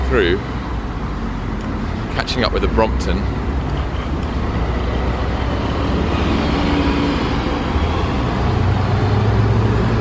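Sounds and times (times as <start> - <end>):
dense road traffic on a busy street: 0.0 - 9.9
speech: 0.1 - 0.6, 2.2 - 3.4.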